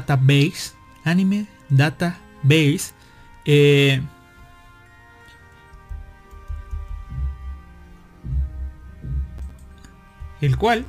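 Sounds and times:
speech: 0:00.1 - 0:04.2, 0:10.4 - 0:10.8
low thuds of hammering: 0:05.8 - 0:10.8
steady electrical hum: 0:05.8 - 0:10.8.

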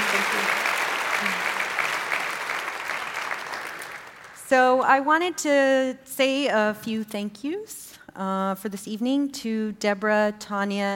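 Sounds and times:
audience applause: 0:00.0 - 0:04.4
speech: 0:04.5 - 0:10.9.

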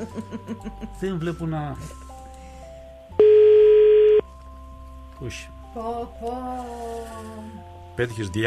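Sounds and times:
speech: 0:00.0 - 0:02.0, 0:05.2 - 0:08.4
electronic ringing tone of a telephone call: 0:03.2 - 0:04.2.

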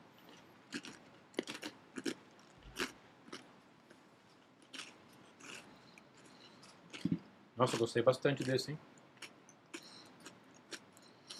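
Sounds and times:
person chewing food: 0:00.2 - 0:11.3
speech: 0:07.6 - 0:09.0.

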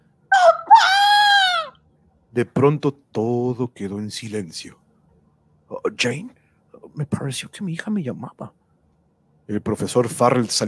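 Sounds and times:
young woman screaming loudly: 0:00.4 - 0:01.7
speech: 0:02.4 - 0:04.8, 0:05.8 - 0:08.6, 0:09.5 - 0:10.6.

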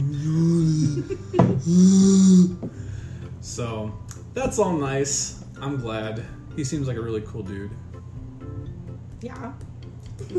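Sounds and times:
person yawning with voiced groans: 0:00.0 - 0:02.8
speech: 0:01.1 - 0:02.0, 0:03.5 - 0:07.9, 0:09.2 - 0:10.3
sharp breathy inhales: 0:01.6 - 0:03.4.

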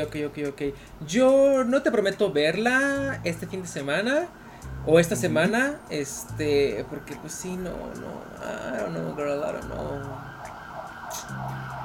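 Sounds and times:
speech: 0:00.0 - 0:10.3
ambulance siren wailing outside: 0:06.7 - 0:11.8.

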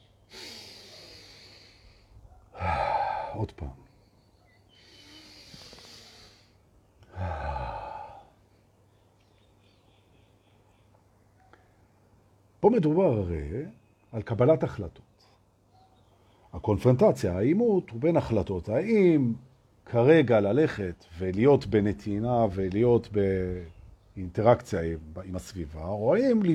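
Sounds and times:
slow deep breathing during a breathing exercise: 0:00.3 - 0:03.4, 0:04.7 - 0:08.4
speech: 0:03.4 - 0:03.8, 0:12.7 - 0:15.1, 0:16.6 - 0:26.5.

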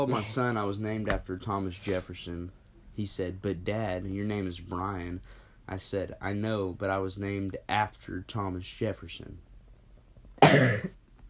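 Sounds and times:
speech: 0:00.0 - 0:09.5, 0:10.4 - 0:11.0
single sharp cough: 0:10.4 - 0:11.0.

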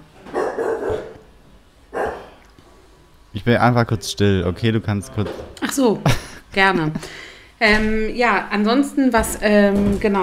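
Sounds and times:
dog barking: 0:00.3 - 0:01.3, 0:01.9 - 0:02.4
speech: 0:03.4 - 0:10.2.

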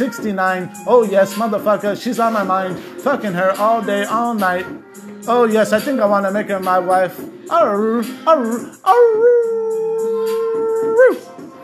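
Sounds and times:
speech: 0:00.0 - 0:09.5
wolf howling: 0:08.5 - 0:11.3.

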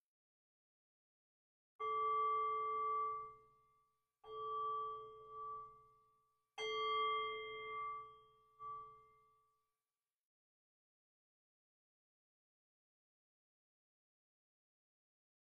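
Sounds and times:
meditation bell ringing: 0:01.8 - 0:09.5.

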